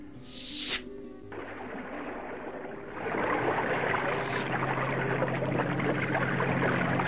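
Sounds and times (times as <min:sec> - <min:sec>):
water gushing and flowing from the ground: 0:00.0 - 0:07.0
brief whooshing swish: 0:00.2 - 0:01.0.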